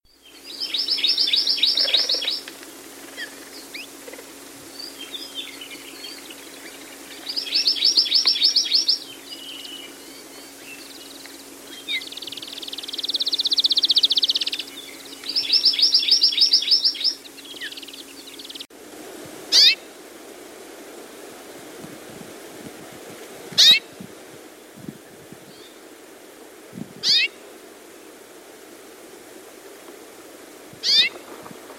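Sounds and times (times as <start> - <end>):
Amakihi: 0.3 - 18.6, 27.0 - 27.4, 30.8 - 31.5.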